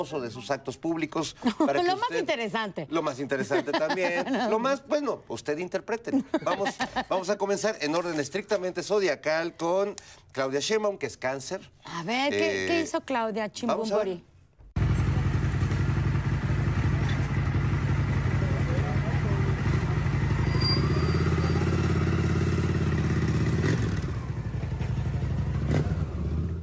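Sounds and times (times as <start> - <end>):
speech: 0.0 - 14.3
laughter: 1.4 - 2.3, 3.2 - 4.8, 6.1 - 7.4
motorcycle engine running and revving: 14.8 - 26.6.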